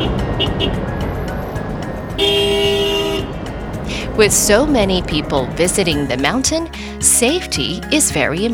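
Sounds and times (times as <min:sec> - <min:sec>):
steady rumble of traffic in a jam on narrow mountain roads: 0:00.0 - 0:08.5
car horns honking in a traffic jam on narrow mountain roads: 0:02.2 - 0:06.5
speech: 0:04.2 - 0:08.5.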